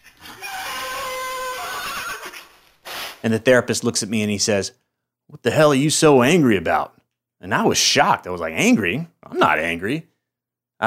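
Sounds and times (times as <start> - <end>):
large horse in a mountain pen whinnying: 0.0 - 2.6
speech: 3.2 - 10.1.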